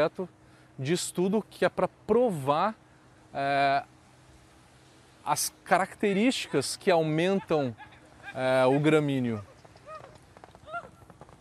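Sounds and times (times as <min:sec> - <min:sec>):
speech: 0:00.0 - 0:03.9, 0:05.3 - 0:09.5
riders calling: 0:06.0 - 0:11.1
ridden horses galloping past, hooves clip-clopping: 0:06.4 - 0:11.3.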